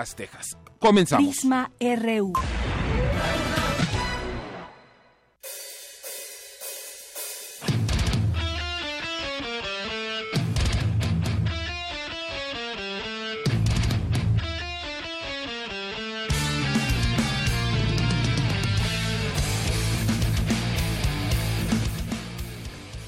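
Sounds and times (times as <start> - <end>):
speech: 0.0 - 3.4
distorted heavy metal guitars: 7.6 - 23.0.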